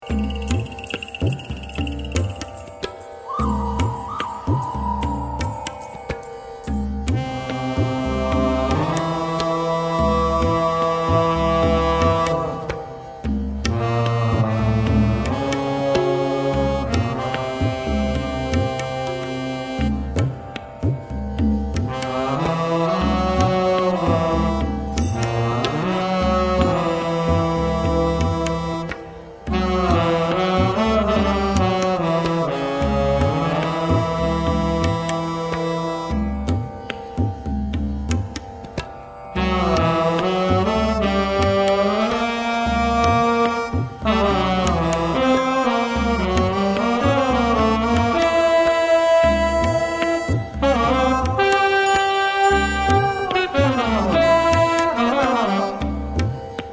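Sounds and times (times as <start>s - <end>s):
tabla: 0.0s - 56.7s
harmonium: 5.7s - 56.7s.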